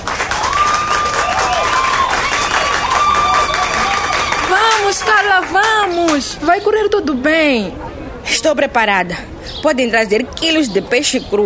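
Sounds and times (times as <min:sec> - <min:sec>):
crowd applauding: 0:00.0 - 0:06.2
speech: 0:05.0 - 0:11.4.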